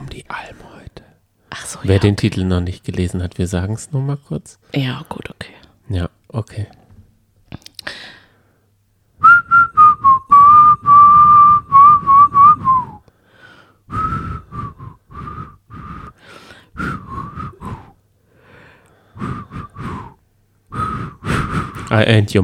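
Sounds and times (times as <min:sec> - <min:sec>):
speech: 0:00.2 - 0:00.7, 0:01.5 - 0:06.8, 0:21.9 - 0:22.4
person whistling a pop tune: 0:09.2 - 0:13.1, 0:13.9 - 0:16.2, 0:16.8 - 0:18.0, 0:19.2 - 0:21.7.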